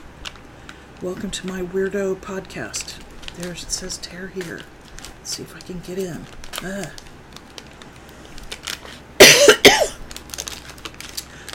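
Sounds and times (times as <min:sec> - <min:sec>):
speech: 0:01.0 - 0:07.1
person coughing harshly: 0:09.2 - 0:10.0.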